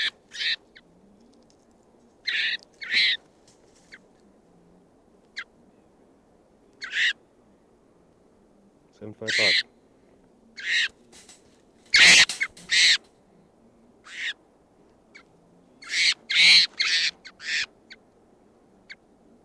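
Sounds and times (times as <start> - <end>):
wild birds calling in harsh raspy bursts: 0.0 - 1.3, 2.2 - 3.2, 6.8 - 7.2, 9.2 - 13.4, 14.0 - 14.4, 15.1 - 18.0
speech: 9.0 - 9.7.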